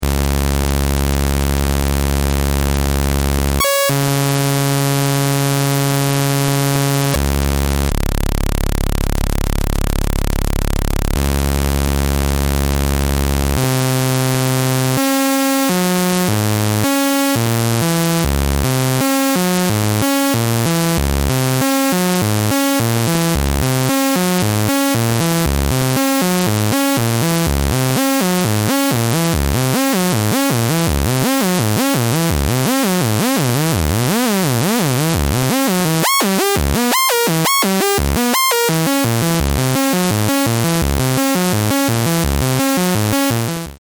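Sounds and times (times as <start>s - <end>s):
sawtooth wave tone: 0.0s - 43.8s.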